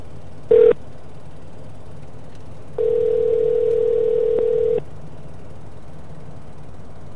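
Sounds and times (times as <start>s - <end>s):
telephone ringback tone on an outgoing call to a coffee business in Augusta Georgia: 0.5s - 0.8s, 2.8s - 4.8s.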